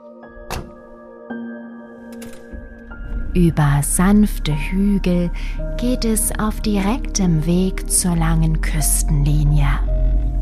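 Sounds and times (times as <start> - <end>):
jeep door thunking shut on Kangaroo Island: 0.4 - 0.8
speech: 3.4 - 9.9.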